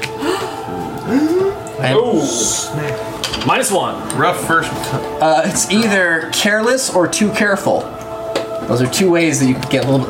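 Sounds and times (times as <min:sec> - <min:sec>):
group of people gasping: 0:00.0 - 0:01.8
speech: 0:01.8 - 0:08.0, 0:08.6 - 0:10.0.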